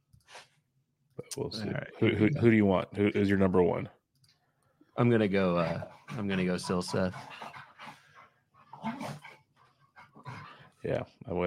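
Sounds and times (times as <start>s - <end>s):
speech: 1.2s - 4.0s, 5.0s - 7.5s, 10.8s - 11.4s
dogs barking: 5.5s - 10.8s.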